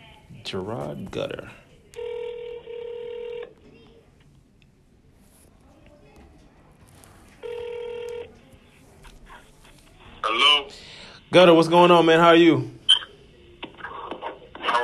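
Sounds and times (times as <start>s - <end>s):
low noise: 0.0s - 14.8s
speech: 0.4s - 1.6s, 11.3s - 12.8s
telephone ringback tone from an outgoing call: 2.0s - 3.5s, 7.4s - 8.4s.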